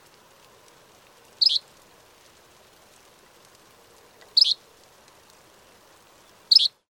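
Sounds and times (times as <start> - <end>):
short high bird calls: 1.4 - 1.6, 4.4 - 4.6, 6.5 - 6.8.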